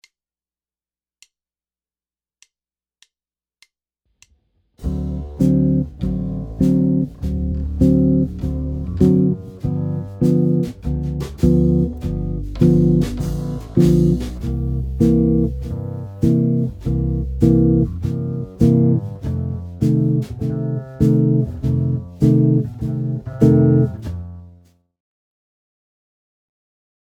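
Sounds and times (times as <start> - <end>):
guitar playing jazz chord progression: 4.8 - 24.5.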